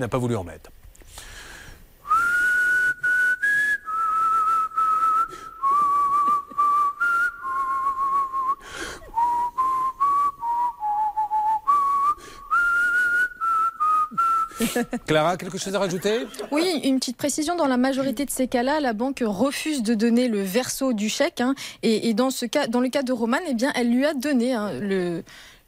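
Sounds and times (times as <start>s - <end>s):
speech: 0.0s - 1.3s, 14.8s - 25.5s
person whistling a wandering melody as hold music on a bank phone call: 2.1s - 14.6s
laughter: 5.8s - 6.8s, 14.5s - 16.9s.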